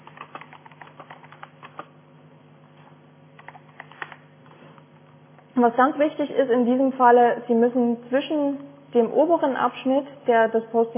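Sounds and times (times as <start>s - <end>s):
typing a message on a computer keyboard: 0.0s - 1.9s, 3.4s - 4.2s
speech: 5.6s - 10.9s.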